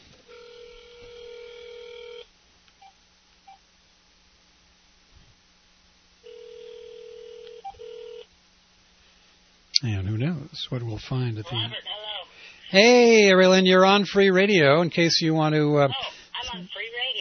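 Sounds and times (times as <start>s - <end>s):
telephone ringback tone heard over the line: 0.3s - 2.2s, 6.2s - 8.2s
speech: 9.8s - 12.0s, 12.7s - 16.8s.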